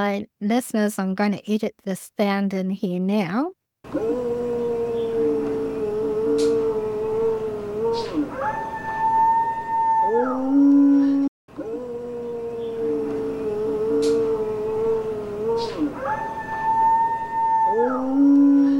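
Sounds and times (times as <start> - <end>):
speech: 0.0 - 4.4
alleged Bigfoot long wavering howls recorded in the woods: 4.0 - 18.7.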